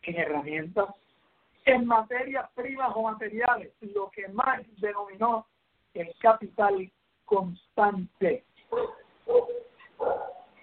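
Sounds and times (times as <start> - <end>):
speech: 0.1 - 10.3
dog barking loud and low-pitched: 8.7 - 10.6.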